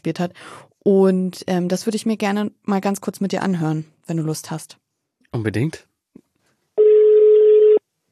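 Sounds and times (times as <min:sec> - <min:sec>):
speech: 0:00.0 - 0:05.9
low telephone ringing tone as a call is placed: 0:06.8 - 0:07.8.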